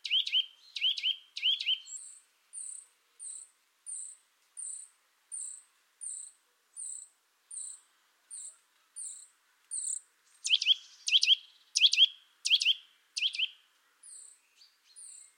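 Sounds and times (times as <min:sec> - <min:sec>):
Eurasian nuthatch Sitta europaea sharp double calls: 0:00.0 - 0:14.3.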